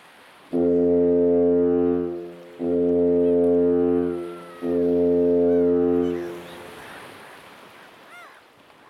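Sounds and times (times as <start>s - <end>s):
lighthouse foghorn blasts: 0.5s - 6.8s.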